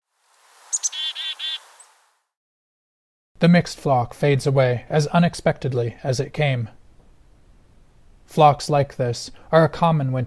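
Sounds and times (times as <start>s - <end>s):
Black-capped Chickadee call in winter conifer forest: 0.7s - 1.9s
speech: 3.4s - 6.8s, 8.3s - 10.2s.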